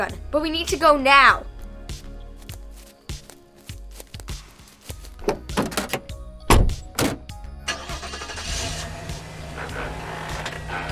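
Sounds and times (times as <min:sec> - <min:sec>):
speech: 0:00.0 - 0:01.5
heavy car doors shutting: 0:05.2 - 0:10.9.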